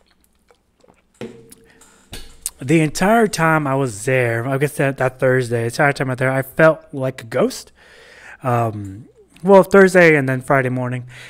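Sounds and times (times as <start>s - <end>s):
person sipping a drink: 0.0s - 2.6s
speech: 2.6s - 11.2s
quiet breathy exhale: 7.8s - 8.4s.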